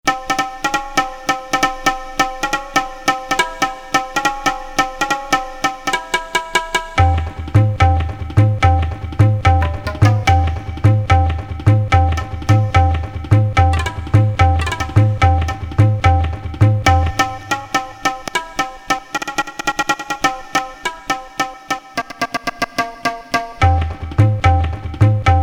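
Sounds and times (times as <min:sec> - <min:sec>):
Indian instrument rhythm on a Korg DSS-1 synthesizer: 0:00.0 - 0:25.4.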